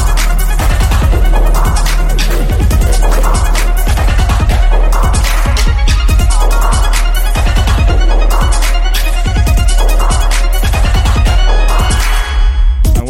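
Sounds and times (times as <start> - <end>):
dubstep track played as storm music: 0.0 - 13.0.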